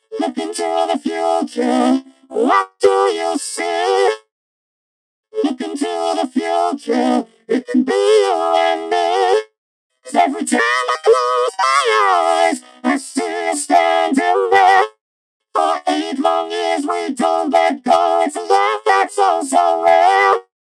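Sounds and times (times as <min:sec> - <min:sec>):
autotune classic vocoder vocals: 0:00.0 - 0:04.3, 0:05.4 - 0:15.0, 0:15.6 - 0:20.6.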